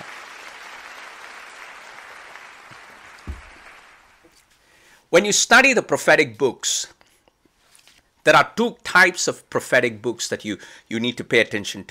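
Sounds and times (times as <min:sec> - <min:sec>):
large audience clapping at a worship service: 0:00.0 - 0:04.2
single loud thump: 0:03.2 - 0:03.5
speech: 0:05.1 - 0:07.0, 0:08.2 - 0:11.8.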